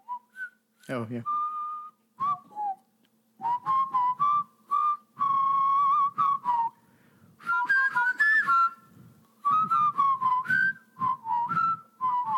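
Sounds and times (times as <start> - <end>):
speech: 0.9 - 1.4
whistled marching tune in a film scene: 1.3 - 2.8, 3.4 - 6.8, 7.4 - 12.3.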